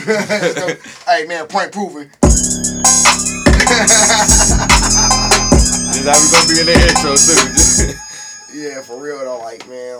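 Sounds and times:
laughter: 0.0 - 0.9, 3.6 - 5.5
speech: 0.0 - 5.3, 6.0 - 9.9
punchy electronic beat with kick drums, bassline and hi-hats: 2.2 - 8.5.

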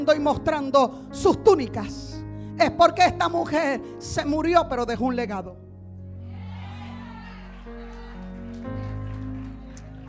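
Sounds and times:
speech: 0.0 - 5.6
sustained keyboard chords: 0.0 - 10.0
scattered applause from a few people: 6.3 - 10.0.

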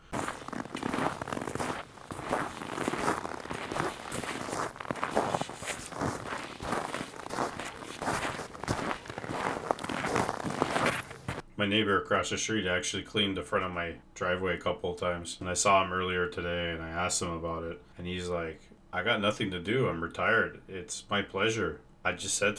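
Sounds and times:
footsteps walking in crunchy snow: 0.0 - 11.4
speech: 11.6 - 22.5.

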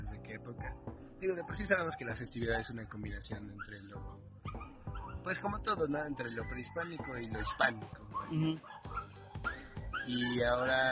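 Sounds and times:
speech: 0.3 - 4.4, 5.2 - 10.8
dog barking and whimpering in a studio: 3.6 - 5.3, 6.1 - 10.8.

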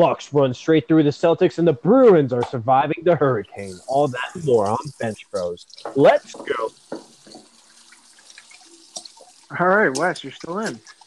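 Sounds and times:
speech: 0.0 - 7.1, 9.5 - 11.0
water pouring from a sink faucet: 3.5 - 11.0
clinks and drips: 3.6 - 11.0.

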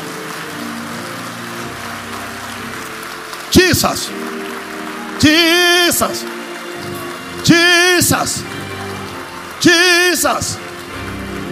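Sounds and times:
crowd applauding loudly: 0.0 - 11.5
sustained musical tones: 0.0 - 11.5
speech: 3.7 - 4.3, 5.2 - 8.6, 9.6 - 10.6.

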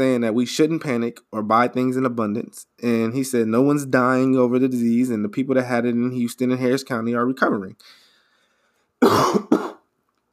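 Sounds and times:
speech: 0.0 - 8.0, 9.0 - 9.6
person coughing harshly: 9.0 - 9.9.

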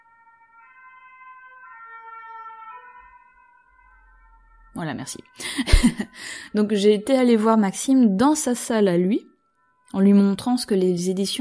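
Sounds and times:
ambulance siren wailing: 0.0 - 6.6
speech: 4.8 - 9.3, 9.9 - 11.3
laughter: 5.4 - 6.2.

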